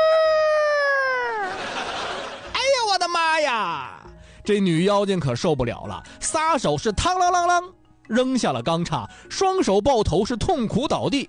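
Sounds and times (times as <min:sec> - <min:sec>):
voice imitating a big rooster crowing as it flaps its wings: 0:00.0 - 0:01.6
laughter: 0:01.2 - 0:02.6
speech: 0:03.4 - 0:11.2.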